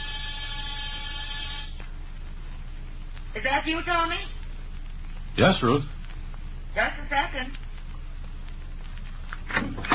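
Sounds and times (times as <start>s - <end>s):
apartment door buzzer droning in a harsh tone: 0.0s - 1.8s
low rumble: 0.0s - 9.9s
speech: 3.4s - 4.4s, 5.4s - 6.0s, 6.8s - 7.6s.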